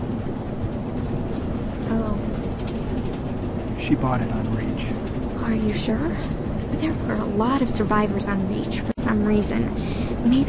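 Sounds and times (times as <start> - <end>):
moving train carriage rumble: 0.0 - 10.4
voice: 3.8 - 5.0
speech: 3.9 - 10.4.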